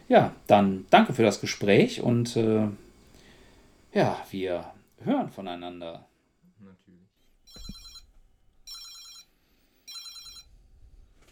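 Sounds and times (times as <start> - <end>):
speech: 0.1 - 2.8, 3.9 - 7.7
telephone ringing with a bright electronic trill: 7.5 - 8.1, 8.7 - 10.5.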